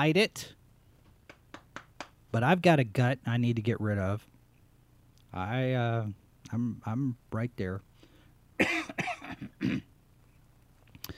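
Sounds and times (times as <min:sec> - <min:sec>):
speech: 0:00.0 - 0:00.6, 0:02.3 - 0:04.3, 0:05.3 - 0:07.9
person coughing harshly: 0:08.6 - 0:09.9.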